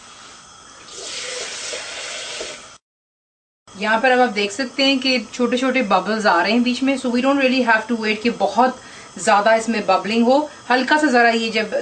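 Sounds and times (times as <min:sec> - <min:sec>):
water pouring from a mug into a cooking pot: 0:00.1 - 0:02.8
speech: 0:03.8 - 0:11.8.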